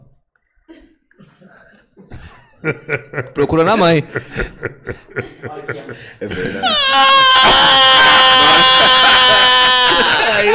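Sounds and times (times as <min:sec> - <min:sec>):
laughter: 0:02.0 - 0:10.5
speech: 0:02.6 - 0:09.0
voice imitating a five-year-old child crying: 0:06.6 - 0:10.5.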